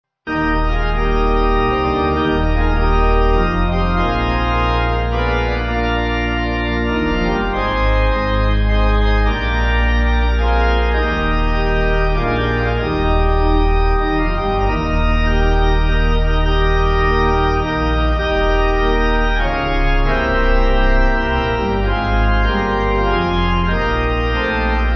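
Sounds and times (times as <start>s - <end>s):
pipe organ church music backing: 0.3s - 24.9s.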